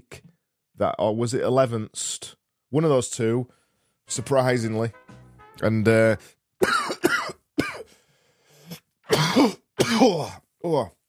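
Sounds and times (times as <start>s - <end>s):
speech: 0.8s - 6.8s, 9.4s - 11.0s
man doing deliberate performative coughs: 6.6s - 7.9s, 8.7s - 10.4s.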